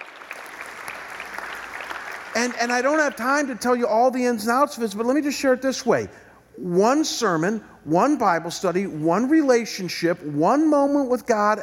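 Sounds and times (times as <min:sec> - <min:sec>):
crowd clapping: 0:00.0 - 0:03.5
speech: 0:02.4 - 0:11.6.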